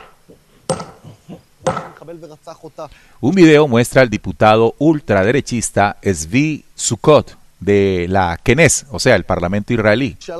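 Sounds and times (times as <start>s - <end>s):
hammer blows smashing a stone monument: 0.0s - 2.0s
speech: 2.0s - 10.3s.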